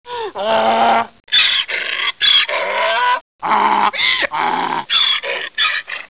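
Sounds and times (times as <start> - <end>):
donkey: 0.4 - 6.1.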